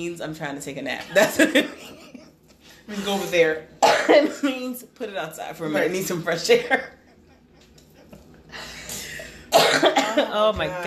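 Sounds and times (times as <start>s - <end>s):
speech: 0.0s - 2.1s, 2.9s - 7.0s, 10.2s - 10.8s
person coughing: 3.8s - 4.5s, 9.0s - 10.3s.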